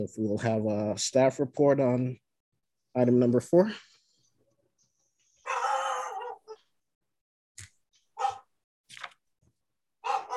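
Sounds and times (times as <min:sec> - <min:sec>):
speech: 0:00.0 - 0:02.2, 0:02.9 - 0:03.9
pet dog barking and yelping during a meeting: 0:05.4 - 0:06.6, 0:08.2 - 0:08.5, 0:10.0 - 0:10.3.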